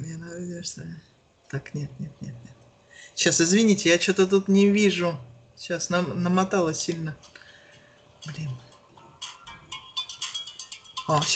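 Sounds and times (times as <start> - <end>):
speech: 0.3 - 7.4, 8.2 - 8.7, 11.1 - 11.3
phone ringing with electronic melody: 8.2 - 11.3.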